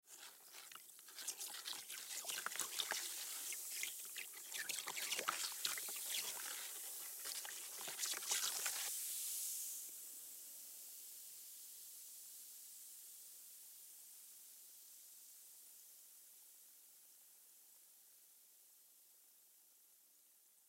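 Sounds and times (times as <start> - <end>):
stirring vinegar and baking soda mix: 0.0 - 8.9
vinegar and baking soda mix fizzing: 0.1 - 9.8.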